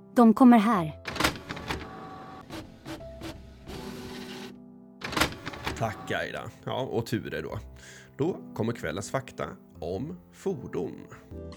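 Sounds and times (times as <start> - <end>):
speech: 0.2 - 1.0, 5.8 - 11.5
printer printing out pages of information: 1.1 - 6.3.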